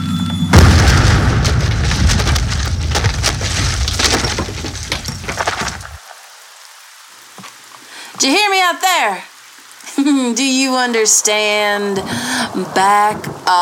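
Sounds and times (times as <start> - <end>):
.50 caliber round fired point blank into a house wall: 0.6 - 5.9
glass breaking: 0.6 - 6.0
house wall wood crashing and splintering: 0.6 - 6.0
speech: 8.2 - 9.3, 10.0 - 13.6.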